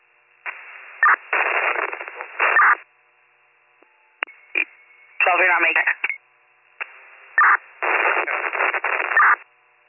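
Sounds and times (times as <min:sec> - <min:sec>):
radio static crackling through a tinny transmission channel: 0:00.4 - 0:02.9, 0:04.6 - 0:06.2, 0:06.8 - 0:09.5
speech: 0:05.3 - 0:06.0.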